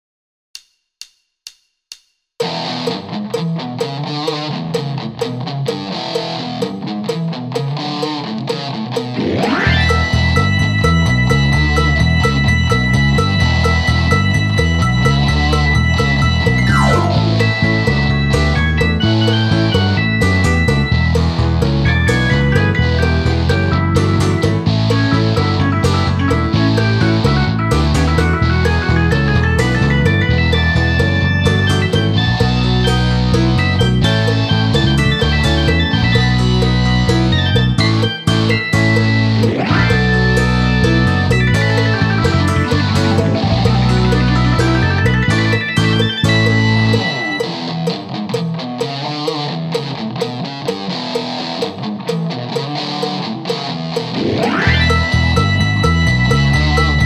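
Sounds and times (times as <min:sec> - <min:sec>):
hard rock backing track: 0:02.4 - 0:57.0.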